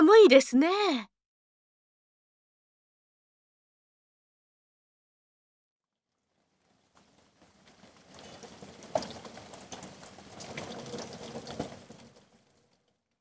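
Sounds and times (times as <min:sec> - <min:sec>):
speech: 0:00.1 - 0:01.1
heavy rain: 0:06.3 - 0:12.8.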